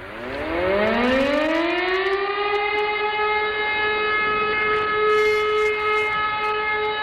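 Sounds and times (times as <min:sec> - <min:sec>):
civil defence air raid siren test: 0:00.0 - 0:07.0.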